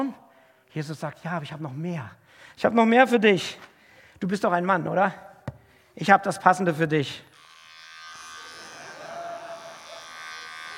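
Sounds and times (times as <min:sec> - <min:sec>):
speech: 0:00.0 - 0:05.3, 0:06.0 - 0:07.3
electric razor buzzing with a bright mechanical whir: 0:07.3 - 0:10.7.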